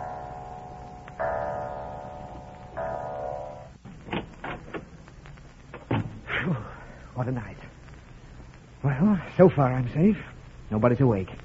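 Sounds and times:
clock striking the hour: 0.0s - 3.8s
speech: 7.2s - 7.6s, 8.9s - 11.4s.

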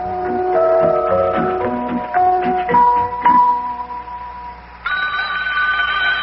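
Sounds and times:
bright chiming tones: 0.6s - 6.2s
electronic telephone ringing in a home in Cincinnati: 4.9s - 6.2s.

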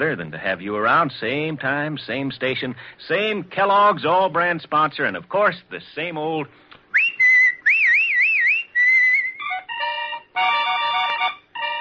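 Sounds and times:
speech: 0.0s - 6.7s
person whistling a short warbling melody with vibrato: 6.9s - 10.0s
bright chord-like musical bursts: 9.0s - 11.7s.

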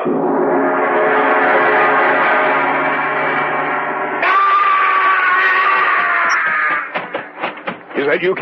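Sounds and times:
dense droning chord: 0.0s - 4.2s
loud sustained high-pitched scream: 4.1s - 7.0s
speech: 8.0s - 8.3s.

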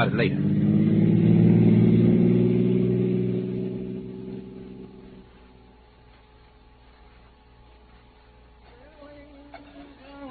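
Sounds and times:
speech: 0.0s - 0.7s
car engine humming while driving: 0.0s - 10.2s.

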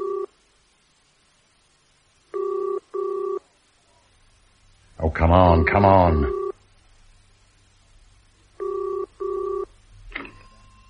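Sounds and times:
telephone ringing at the far end of a call from a phone booth: 0.0s - 0.3s, 2.3s - 3.4s, 6.3s - 6.6s, 8.6s - 10.8s
speech: 5.1s - 6.4s.

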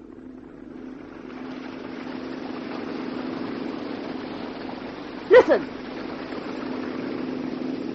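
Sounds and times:
motorboat engine throbbing: 0.0s - 7.9s
person calling out: 5.3s - 5.6s
speech: 5.5s - 5.8s.

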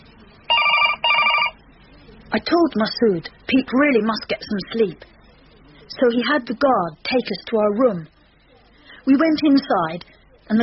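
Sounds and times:
telephone ringing: 0.5s - 1.6s
speech: 2.3s - 5.1s, 6.0s - 8.1s, 9.0s - 10.6s.

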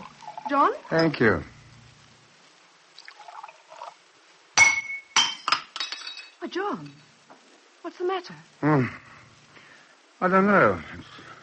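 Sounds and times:
wine glass slipping from hand and clinking: 0.0s - 1.2s, 4.6s - 7.0s
speech: 0.5s - 1.6s, 6.5s - 7.1s, 7.8s - 9.2s, 10.2s - 11.3s.

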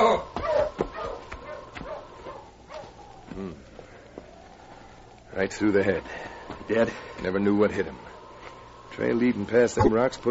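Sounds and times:
team of sled dogs barking and yelping excitedly: 0.0s - 3.3s
speech: 5.4s - 8.1s, 9.0s - 10.2s.

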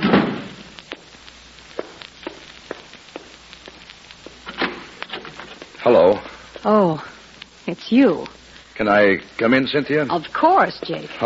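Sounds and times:
door shutting with a heavy thud: 0.0s - 0.5s
speech: 5.8s - 7.1s, 7.7s - 11.2s.

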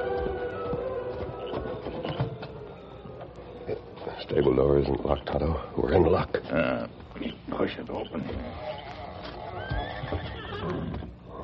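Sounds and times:
horses whinnying inside a stable: 0.0s - 3.0s, 6.1s - 11.4s
speech: 4.2s - 8.8s.

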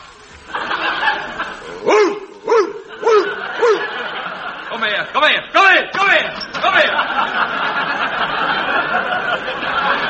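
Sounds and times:
laughter: 0.2s - 5.5s, 6.2s - 10.0s
dog barking loudly: 1.8s - 4.0s.

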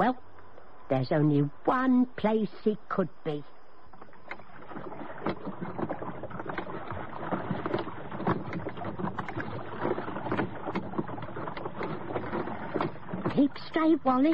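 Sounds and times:
speech: 0.9s - 3.6s, 13.4s - 14.3s
oars of a rowed dinghy dipping and splashing on a river: 3.8s - 14.3s.

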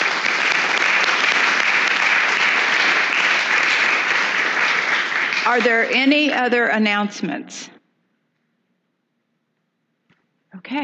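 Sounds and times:
congregation applauding: 0.0s - 6.5s
speech: 5.5s - 7.8s, 10.6s - 10.8s.

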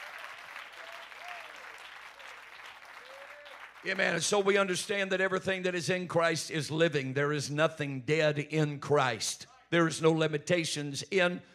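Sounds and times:
faint crowd whistles and cheers: 0.0s - 3.8s
large crowd applause: 0.0s - 4.8s
speech: 3.8s - 11.5s.

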